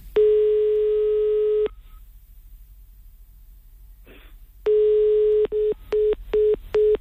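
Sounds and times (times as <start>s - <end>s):
telephone ringing tone over the line as a call is placed: 0.2s - 1.8s, 4.7s - 6.9s.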